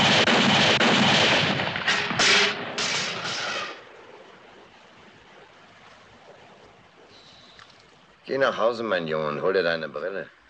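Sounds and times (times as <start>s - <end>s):
gunshots: 0.0s - 4.2s
speech: 8.3s - 10.4s.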